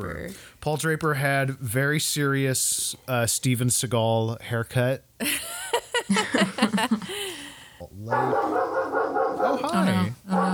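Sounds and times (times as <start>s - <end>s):
speech: 0.0s - 5.5s, 8.0s - 8.8s
laughter: 5.2s - 7.4s
dog howl-like cries: 8.1s - 9.8s
dog barking and yipping: 8.1s - 10.5s.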